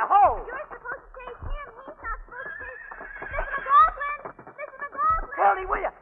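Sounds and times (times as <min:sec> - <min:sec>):
soft low thuds: 0:00.0 - 0:06.0
horse whinnying: 0:02.4 - 0:03.7.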